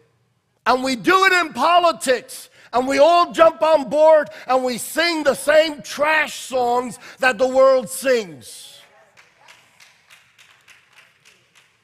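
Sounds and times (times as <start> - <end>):
speech: 0.7 - 8.7
scattered claps from an audience: 8.8 - 11.8.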